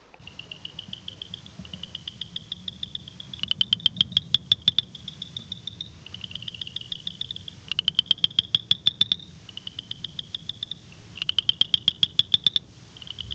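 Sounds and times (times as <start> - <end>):
low steady hum: 0.0 - 13.3
Hylidae tree frog calling with high trilled notes: 0.2 - 13.3.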